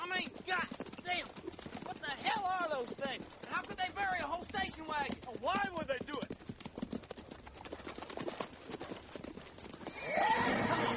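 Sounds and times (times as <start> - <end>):
horse hooves clopping: 0.0 - 10.9
horse whinnying: 9.8 - 10.9.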